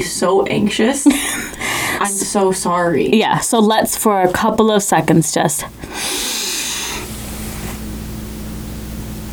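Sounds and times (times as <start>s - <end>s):
speech: 0.0s - 6.3s
laughter: 0.8s - 2.6s
deep exaggerated breathing: 1.1s - 2.4s, 5.6s - 8.1s.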